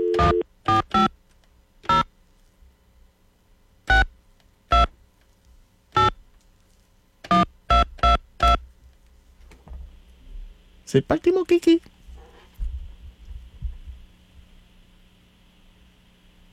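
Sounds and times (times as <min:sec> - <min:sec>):
telephone keypad tones: 0:00.0 - 0:01.1, 0:01.9 - 0:02.1, 0:06.0 - 0:06.2, 0:07.3 - 0:08.6
speech: 0:00.3 - 0:01.1, 0:10.9 - 0:12.0.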